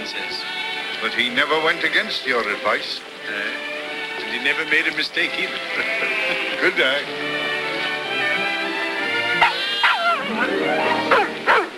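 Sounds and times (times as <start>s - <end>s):
steady tonal musical background: 0.0s - 11.7s
speech: 1.0s - 3.7s, 4.3s - 7.3s, 10.4s - 11.2s
laughter: 5.2s - 8.6s
dogs barking: 9.3s - 11.7s.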